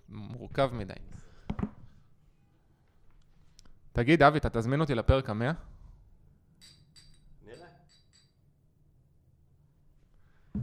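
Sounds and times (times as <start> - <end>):
speech: 0.5 - 1.2, 4.0 - 5.7
shot glasses clinking together in a toast: 6.6 - 8.4.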